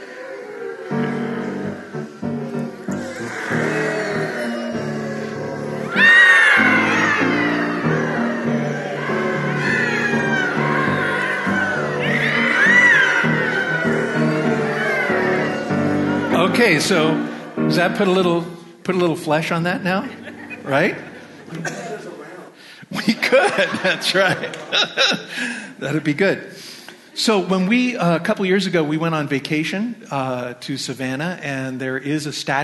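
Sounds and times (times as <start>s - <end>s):
group of people vocally imitating a creaking boat: 0.0s - 16.6s
laughter: 0.0s - 18.1s, 19.9s - 26.2s
speech: 16.6s - 21.8s, 23.3s - 26.6s, 27.2s - 32.6s.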